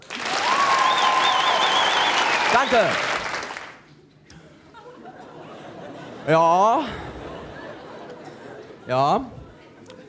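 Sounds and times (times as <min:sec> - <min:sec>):
audience frenetic clapping during a song rehearsal: 0:00.0 - 0:03.9
faint whistle or cheer: 0:00.4 - 0:02.9
speech: 0:02.5 - 0:03.1, 0:06.3 - 0:07.1, 0:08.9 - 0:09.4
laughter: 0:04.4 - 0:10.0.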